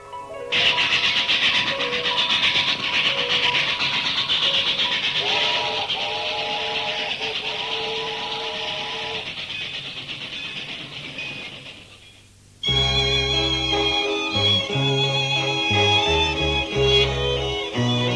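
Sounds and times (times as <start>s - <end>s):
sustained whistle-like train tones: 0.5s - 9.3s, 12.6s - 18.1s
train heading out on a morning run, hissing rumble: 0.5s - 18.1s.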